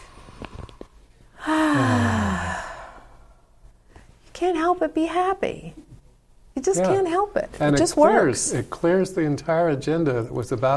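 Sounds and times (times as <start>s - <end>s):
deep sigh during a guided group breathing exercise: 1.4s - 3.5s
speech: 4.4s - 5.8s, 6.6s - 10.7s.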